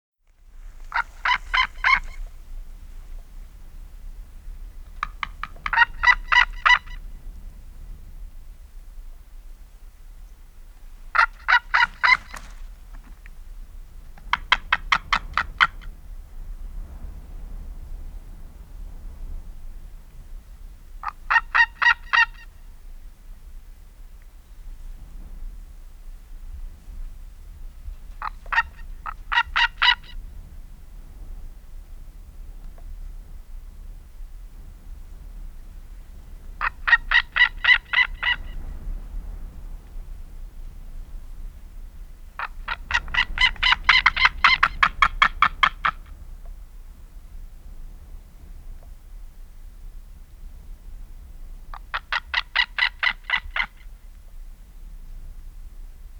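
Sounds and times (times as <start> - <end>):
White-tailed Eagle calling: 0.7 - 2.3, 5.0 - 7.0, 11.1 - 12.7, 21.0 - 22.5, 28.2 - 30.2, 36.6 - 38.6, 42.4 - 46.1, 51.7 - 53.9.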